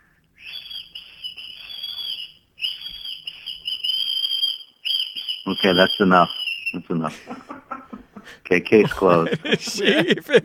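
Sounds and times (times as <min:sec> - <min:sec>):
person whistling one shrill note: 0:00.4 - 0:06.8
speech: 0:05.5 - 0:07.5, 0:08.5 - 0:10.4
laughter: 0:06.9 - 0:10.4.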